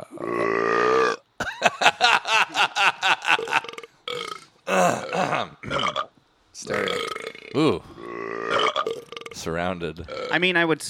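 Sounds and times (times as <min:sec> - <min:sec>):
long loud belches and burped bursts: 0:00.0 - 0:01.6, 0:03.2 - 0:06.1, 0:06.7 - 0:09.4
laughter: 0:01.4 - 0:03.7
speech: 0:09.5 - 0:10.8.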